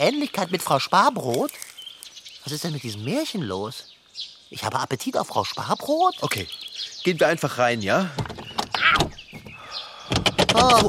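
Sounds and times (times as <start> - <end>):
speech: 0.0 - 1.7, 2.4 - 9.0, 10.6 - 10.8
door handle rattling on a locked door: 8.1 - 10.8.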